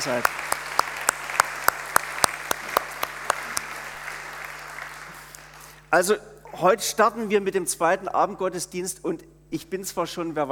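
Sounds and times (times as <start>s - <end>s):
speech: 0.0s - 0.5s, 5.9s - 10.5s
church service audience clapping in welcome: 0.0s - 5.8s
faint room hum: 0.0s - 10.5s.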